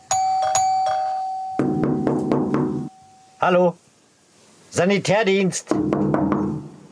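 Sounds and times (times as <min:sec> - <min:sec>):
electronic doorbell chiming at apartment door: 0:00.0 - 0:03.4
loud rapid knocks on the door: 0:01.6 - 0:02.9, 0:05.7 - 0:06.7
speech: 0:03.4 - 0:03.8, 0:04.7 - 0:06.1.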